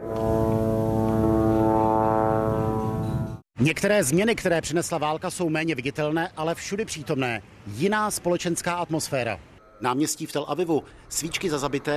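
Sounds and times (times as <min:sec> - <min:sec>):
buzzing engine drone: 0:00.0 - 0:03.4
speech: 0:03.6 - 0:11.9.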